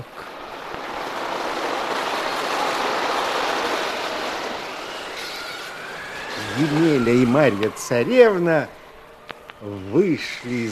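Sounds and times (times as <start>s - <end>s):
waves and surf of a rough sea stirred up by blowing winds: 0.0s - 8.5s
speech: 6.6s - 8.8s, 9.6s - 10.7s.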